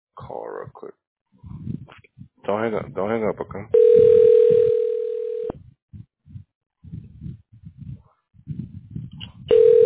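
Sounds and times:
speech: 0.2s - 4.3s
low rumbling and thumping: 1.4s - 3.0s, 5.5s - 9.5s
loud steady electronic telephone ring: 3.8s - 5.6s, 9.5s - 9.8s.

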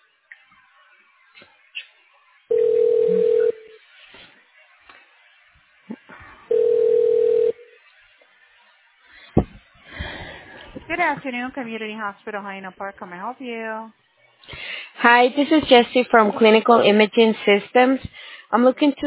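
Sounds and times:
telephone line ringing as a hospital call is transferred: 2.5s - 3.8s, 6.5s - 7.8s
speech: 11.0s - 14.0s, 15.0s - 19.0s.

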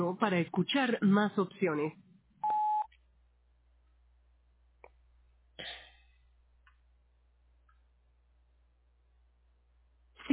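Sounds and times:
speech: 0.0s - 2.0s
voicemail beep tone marking start of recording: 2.4s - 2.9s
faint soft clicks: 6.6s - 6.9s, 7.6s - 7.9s.

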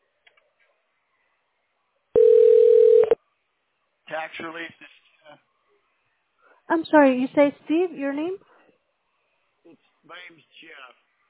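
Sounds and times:
telephone tone while a call is dialed: 2.2s - 3.2s
speech: 4.2s - 5.4s, 6.7s - 8.5s.

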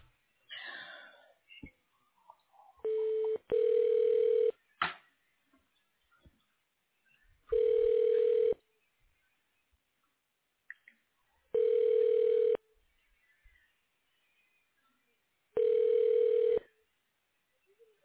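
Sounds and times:
telephone ringback tone as a call is put through to voicemail: 2.9s - 4.5s, 7.5s - 8.6s, 11.5s - 12.6s, 15.6s - 16.7s.

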